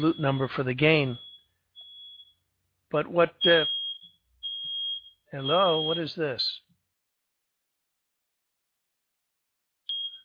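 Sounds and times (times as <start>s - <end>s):
speech: 0.0s - 1.2s, 2.9s - 3.8s, 5.3s - 6.6s
smoke detector in a house beeping while someone is cooking: 0.0s - 2.4s, 3.4s - 6.2s, 9.9s - 10.2s.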